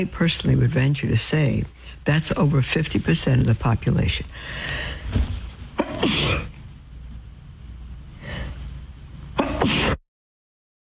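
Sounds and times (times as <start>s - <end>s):
speech: 0.0s - 5.3s
quiet breathing: 1.7s - 2.1s, 4.2s - 5.6s, 8.1s - 9.0s
person sneezing: 5.8s - 6.5s, 9.4s - 10.0s.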